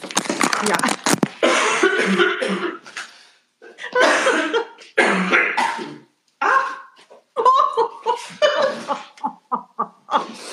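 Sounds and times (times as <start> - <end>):
speech: 0.0 - 1.0
harsh chesty coughing: 1.4 - 2.9, 3.7 - 7.0
laughter: 7.4 - 10.4.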